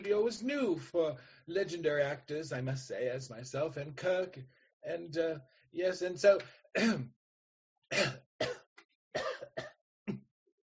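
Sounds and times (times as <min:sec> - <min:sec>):
speech: 0:00.0 - 0:07.2, 0:07.9 - 0:08.6
person clearing throat with harsh rasping bursts: 0:06.8 - 0:07.1, 0:07.9 - 0:10.3.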